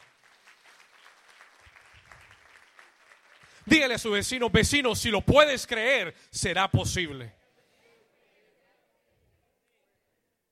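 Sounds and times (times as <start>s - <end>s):
audience applause: 0.0s - 4.2s
speech: 3.7s - 7.4s.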